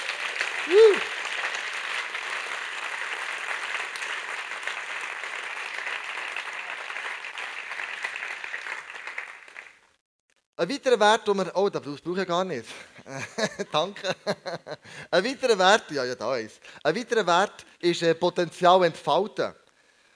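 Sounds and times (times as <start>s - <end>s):
large crowd applauding: 0.0s - 10.0s
speech: 0.7s - 1.2s, 10.6s - 19.6s
laughter: 13.1s - 14.8s.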